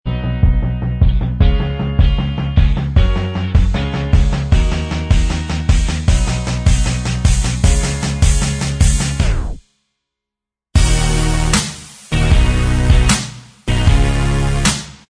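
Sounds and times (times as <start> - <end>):
instrumental backing track: 0.1 - 9.6, 10.8 - 15.0.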